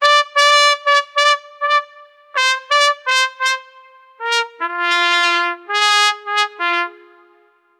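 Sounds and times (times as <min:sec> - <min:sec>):
trumpets playing: 0:00.0 - 0:07.6.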